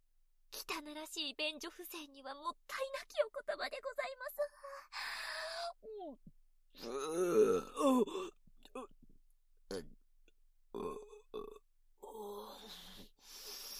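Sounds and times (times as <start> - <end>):
speech: 0.8 - 5.0, 5.8 - 8.9
loud burps: 6.8 - 8.2, 9.7 - 9.9, 10.7 - 11.6.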